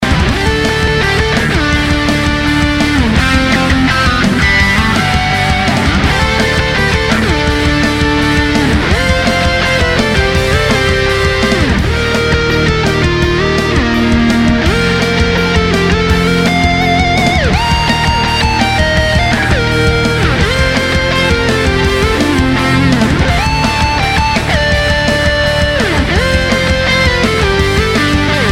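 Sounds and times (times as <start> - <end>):
rocking electric guitar: 0.0 - 28.5.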